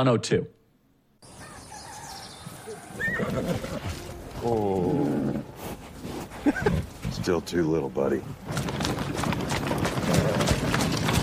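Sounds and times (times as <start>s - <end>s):
speech: 0.0s - 0.6s, 3.2s - 5.5s, 6.4s - 8.8s
Clydesdale horse hooves clip-clopping: 1.9s - 4.8s, 5.4s - 11.2s.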